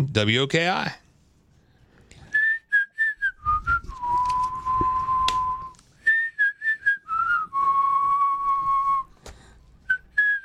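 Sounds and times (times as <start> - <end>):
speech: 0.0 - 1.0
whistled melody: 2.3 - 9.1, 9.9 - 10.4.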